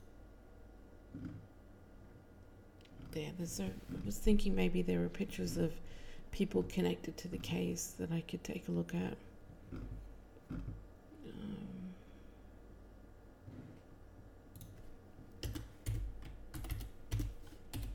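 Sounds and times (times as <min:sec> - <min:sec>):
speech: 0:03.1 - 0:11.6
typing on a computer keyboard: 0:15.4 - 0:17.9.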